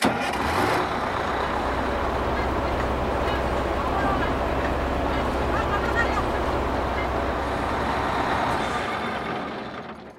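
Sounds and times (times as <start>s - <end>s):
bus: 0.0s - 10.1s
laughter: 1.3s - 8.5s.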